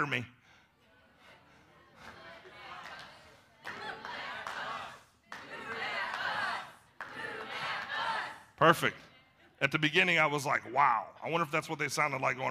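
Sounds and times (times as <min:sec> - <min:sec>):
speech: 0:00.0 - 0:00.4, 0:08.6 - 0:12.5
crowd chanting in unison: 0:00.9 - 0:09.2.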